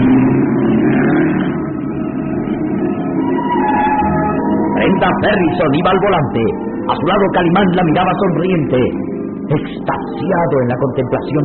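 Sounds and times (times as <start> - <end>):
road noise: 0.0 - 11.4
sports car engine roaring as it speeds along a road southeast of Tangier: 0.0 - 11.4
speech: 5.0 - 11.4.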